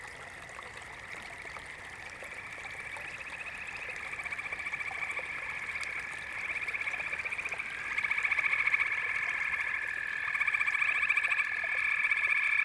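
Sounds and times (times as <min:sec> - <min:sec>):
frogs calling in chorus with rapid pulsed trilling: 0:00.2 - 0:12.6.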